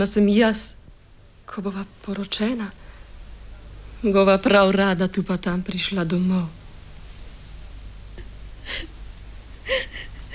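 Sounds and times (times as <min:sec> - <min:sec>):
speech: 0:00.0 - 0:00.8, 0:01.5 - 0:02.8, 0:04.0 - 0:06.6, 0:08.7 - 0:08.9
woman sobbing: 0:08.6 - 0:09.0, 0:09.6 - 0:10.3.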